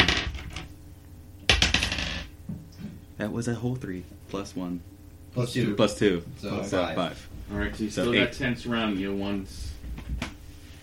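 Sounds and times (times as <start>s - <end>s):
d10 die rolled across a hard tabletop: 0.0s - 0.7s, 1.5s - 2.3s
speech: 3.2s - 9.8s.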